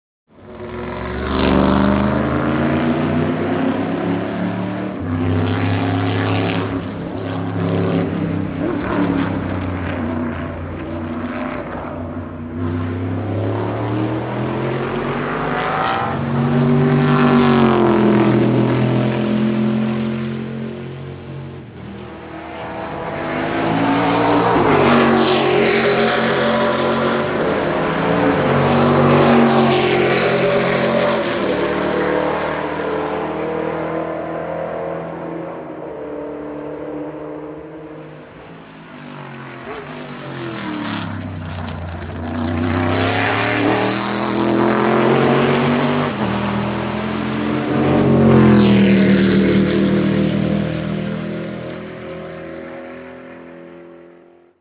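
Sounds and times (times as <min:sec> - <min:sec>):
Corvette C5R race car engine at Le Mans: 0:00.3 - 0:54.5.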